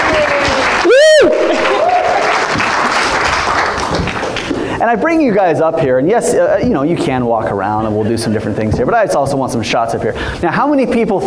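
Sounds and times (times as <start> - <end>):
whooping cheer: 0.0 - 2.6
audience applauding: 0.0 - 4.8
speech: 4.9 - 11.2.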